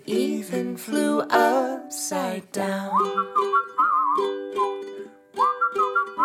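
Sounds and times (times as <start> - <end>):
speech: 0.7 - 4.3
warbling whistles imitating little birds: 3.0 - 4.8, 5.4 - 6.2.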